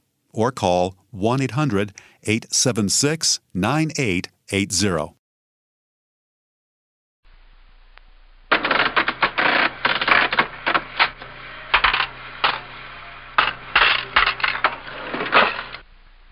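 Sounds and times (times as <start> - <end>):
speech: 0.3 - 5.2
mechanical cash register key strikes clacking: 8.5 - 11.2, 13.4 - 15.8
mechanical cash register drawer rattle: 8.5 - 12.7, 13.4 - 15.8.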